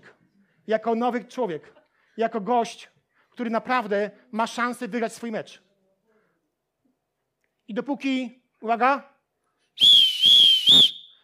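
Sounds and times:
speech: 0:00.7 - 0:05.6, 0:07.7 - 0:09.1, 0:09.8 - 0:10.9
loud shrill referee's whistle blast: 0:09.8 - 0:11.2.

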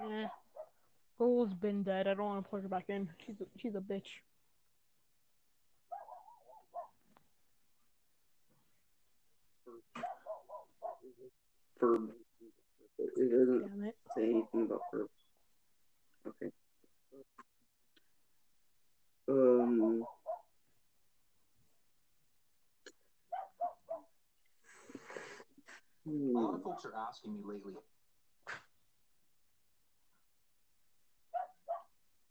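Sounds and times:
dog barking: 0:00.0 - 0:00.8, 0:05.9 - 0:07.0, 0:09.9 - 0:11.1, 0:14.1 - 0:15.1, 0:19.8 - 0:20.5, 0:23.3 - 0:24.2, 0:26.4 - 0:27.1, 0:31.3 - 0:32.0
speech: 0:01.2 - 0:04.3, 0:11.2 - 0:15.2, 0:16.2 - 0:16.6, 0:19.3 - 0:20.2, 0:26.0 - 0:27.9.

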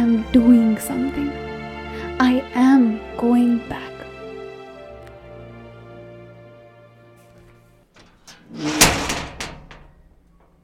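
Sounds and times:
speech: 0:00.2 - 0:01.5, 0:02.2 - 0:03.9
creaking door opening: 0:08.0 - 0:10.6.

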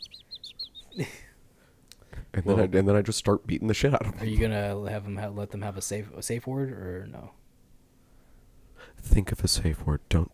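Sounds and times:
bird chirping: 0:00.0 - 0:01.3
speech: 0:01.0 - 0:01.2, 0:02.4 - 0:07.4, 0:09.0 - 0:10.3.

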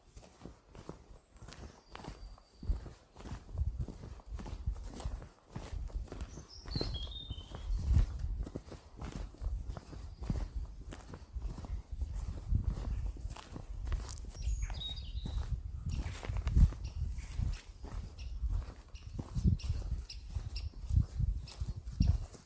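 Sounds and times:
footsteps of a walker on a trail: 0:00.0 - 0:22.4
bird chirps: 0:01.2 - 0:03.0, 0:06.2 - 0:08.0, 0:09.2 - 0:10.6, 0:14.2 - 0:16.2, 0:16.8 - 0:22.4.

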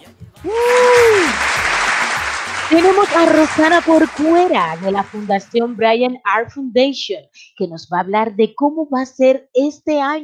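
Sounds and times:
speech: 0:00.1 - 0:00.8, 0:02.7 - 0:10.2
crowd applause: 0:00.5 - 0:05.6.

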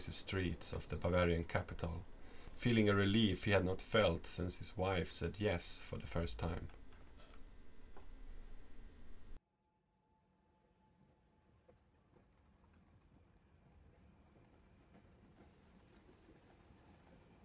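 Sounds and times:
speech: 0:00.0 - 0:06.8
faint train motor whine: 0:00.0 - 0:09.4.

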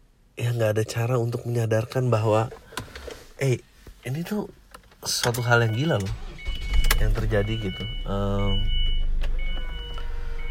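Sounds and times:
speech: 0:00.6 - 0:02.6, 0:03.4 - 0:06.3, 0:07.0 - 0:08.8
faint whining tones over car engine: 0:05.1 - 0:10.4
loud car engine idling: 0:06.0 - 0:10.4.

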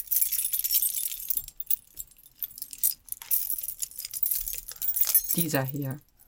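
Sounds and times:
bunch of keys jangling on a keyring: 0:00.0 - 0:06.2
speech: 0:05.4 - 0:06.1.

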